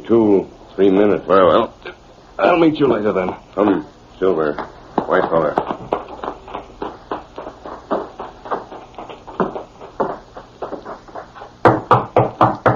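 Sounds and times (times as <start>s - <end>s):
speech: 0.1s - 6.0s
rhythmic thudding: 3.2s - 12.7s
knocking on a door: 11.6s - 12.7s.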